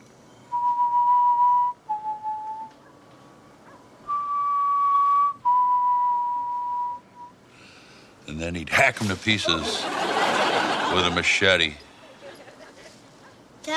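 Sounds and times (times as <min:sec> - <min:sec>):
eerie whistled tune: 0:00.3 - 0:02.8, 0:04.1 - 0:07.4
speech: 0:08.4 - 0:11.9
laughter: 0:09.0 - 0:13.1.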